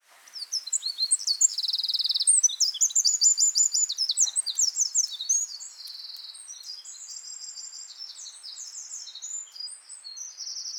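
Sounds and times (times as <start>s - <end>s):
Eurasian wren singing with sharp notes and buzzy trills: 0.4s - 5.6s.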